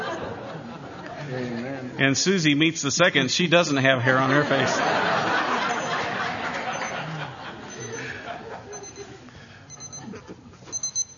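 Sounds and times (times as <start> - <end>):
crowd of people murmuring: 0.0 - 2.0, 4.1 - 10.6
people chuckling: 0.0 - 2.0, 4.1 - 11.0
speech: 1.3 - 5.3
small new alarm clock with high rapid electronic beeping: 5.6 - 6.1, 6.7 - 7.0, 7.7 - 8.1, 8.7 - 9.1, 9.7 - 10.1, 10.7 - 11.1.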